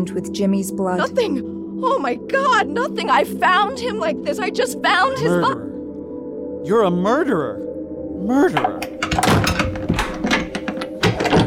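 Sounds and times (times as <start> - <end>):
speech: 0.0 - 5.7, 6.6 - 9.4
door slamming shut with a heavy thud: 8.6 - 11.4
locks engaging with sharp mechanical clicks and clunks: 8.6 - 11.4.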